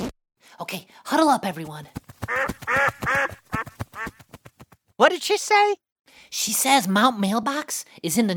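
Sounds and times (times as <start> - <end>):
speech: 0.6 - 3.3, 5.0 - 8.3
duck quacking: 2.2 - 4.2.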